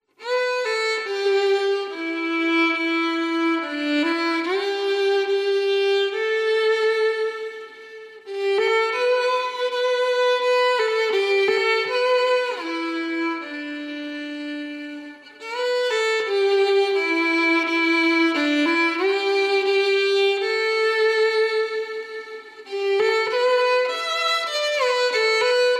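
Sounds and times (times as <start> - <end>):
violin solo: 0.0 - 25.7.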